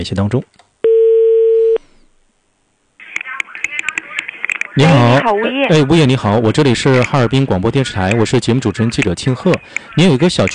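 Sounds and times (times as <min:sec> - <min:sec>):
speech: 0:00.0 - 0:00.6, 0:04.8 - 0:10.5
telephone ringback tone: 0:00.8 - 0:01.8
voice answering over the phone line: 0:03.0 - 0:05.9.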